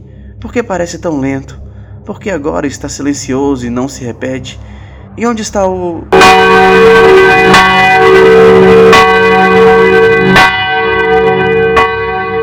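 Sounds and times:
speech: 0.4 - 8.9
loud church bell tolling: 6.1 - 12.4.

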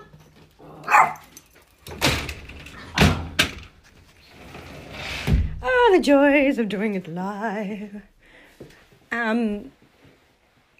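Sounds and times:
dogs barking: 0.8 - 1.3
speech: 5.9 - 8.1, 9.1 - 9.8.

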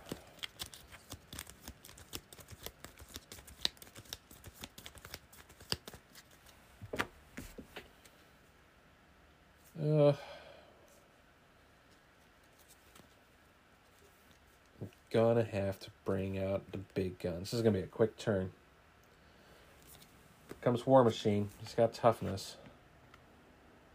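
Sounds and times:
deck of cards being shuffled during a card game: 0.0 - 7.9, 12.3 - 13.2
speech: 15.2 - 18.6, 20.6 - 22.6.

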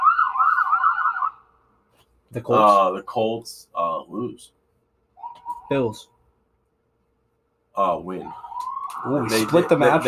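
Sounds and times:
sirens of police cars passing by: 0.0 - 1.5, 8.1 - 10.0
speech: 2.3 - 4.6, 5.7 - 6.1, 7.8 - 10.0.

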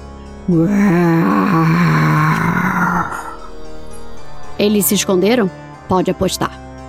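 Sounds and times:
speech: 0.5 - 2.0, 4.6 - 6.6
voice imitating fierce bears roaring: 0.5 - 3.5.

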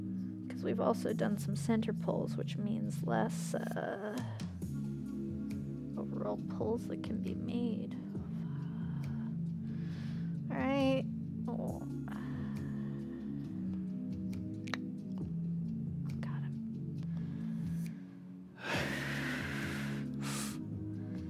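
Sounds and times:
steady low tonal hum: 0.0 - 21.2
speech: 0.6 - 4.5, 6.2 - 8.0
heavy tense breathing: 8.2 - 10.4, 11.8 - 14.1, 17.0 - 21.2.

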